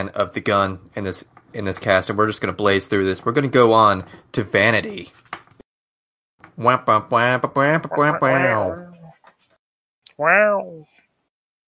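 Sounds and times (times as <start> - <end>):
speech: 0.0 - 5.3, 6.6 - 8.9, 10.2 - 10.9
person imitating a tiger growl: 7.9 - 9.0.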